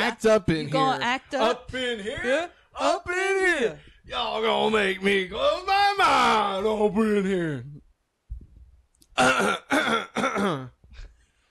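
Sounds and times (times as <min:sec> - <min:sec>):
speech: 0:00.1 - 0:07.8, 0:09.2 - 0:10.8
person clearing throat: 0:09.2 - 0:10.8.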